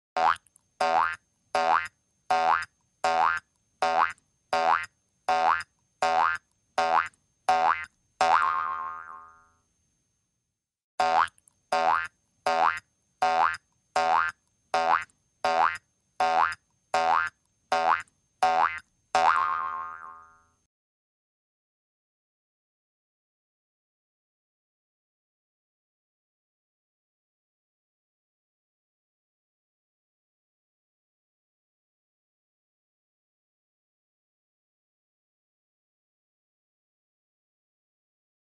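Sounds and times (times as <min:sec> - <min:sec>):
cartoon hopping sound: 0:00.2 - 0:09.4, 0:11.0 - 0:20.4.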